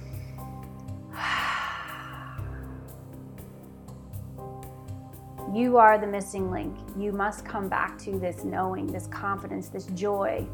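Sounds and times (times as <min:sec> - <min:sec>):
quiet sustained music: 0:00.0 - 0:10.5
deep breath in: 0:01.1 - 0:02.9
speech: 0:05.5 - 0:10.5.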